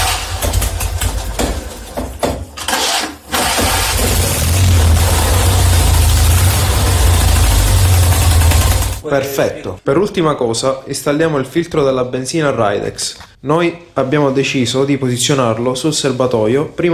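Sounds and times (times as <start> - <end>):
two-cylinder 650 engine starting and idling after valve adjustment: 0.0 - 1.4, 2.7 - 9.0
speech: 9.1 - 16.9.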